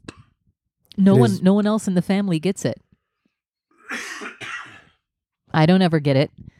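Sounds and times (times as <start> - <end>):
speech: 1.0 - 2.8, 5.5 - 6.5
harsh bursts of coughing: 3.8 - 5.0.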